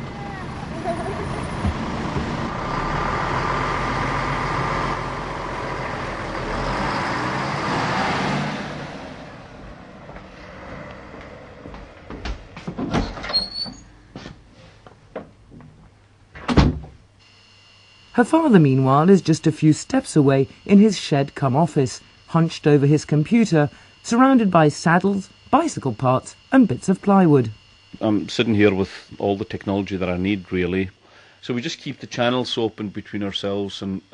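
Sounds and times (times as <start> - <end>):
school bus engine roar: 0.0 - 11.7
clunks and thuds: 1.5 - 2.5, 11.7 - 13.4, 16.4 - 17.0
speech: 18.2 - 34.1.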